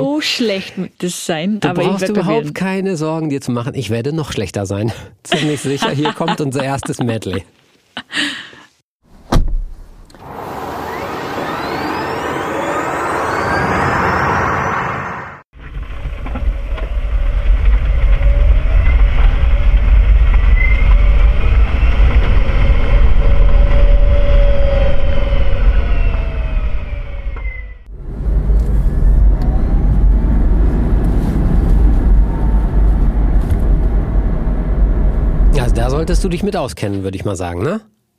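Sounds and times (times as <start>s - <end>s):
speech: 0.0s - 8.4s, 36.1s - 38.0s
laughter: 5.3s - 8.5s
car door clunk: 9.2s - 9.8s
car engine running and accelerating: 10.0s - 15.4s, 16.2s - 36.3s.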